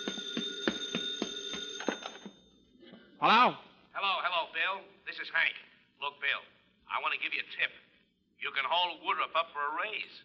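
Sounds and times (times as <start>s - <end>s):
telephone bell ringing: 0.0s - 2.6s
speech: 3.2s - 7.8s, 8.4s - 10.2s.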